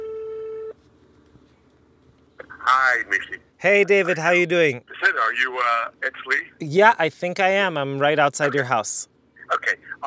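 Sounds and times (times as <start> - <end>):
electronic phone ringback tone while placing a call: 0.0 - 0.8
speech: 2.6 - 10.0.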